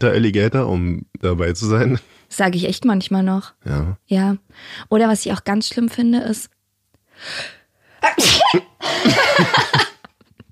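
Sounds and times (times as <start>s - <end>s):
speech: 0.0s - 6.6s, 7.2s - 9.8s
person sneezing loudly: 8.0s - 9.0s
laughter: 8.8s - 10.4s.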